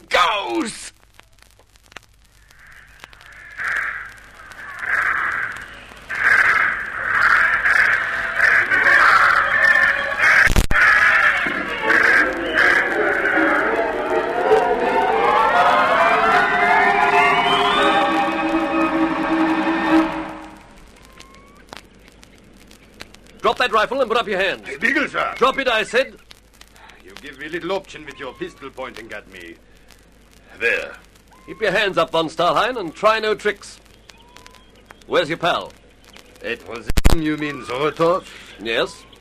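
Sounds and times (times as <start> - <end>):
rising whine and rushing noise: 2.3 - 23.5
crows cawing harshly: 2.4 - 23.2, 26.8 - 30.0, 31.2 - 33.3, 34.0 - 36.5
speech: 23.8 - 26.2, 27.4 - 29.7, 30.6 - 33.8, 35.1 - 35.8, 36.4 - 39.0.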